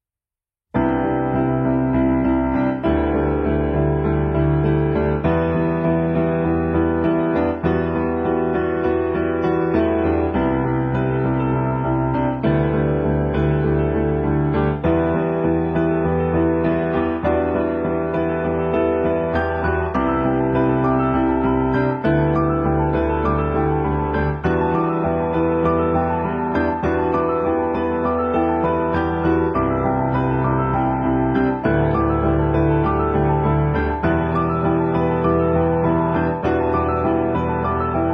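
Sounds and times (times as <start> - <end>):
piano cover: 0.7 - 38.1.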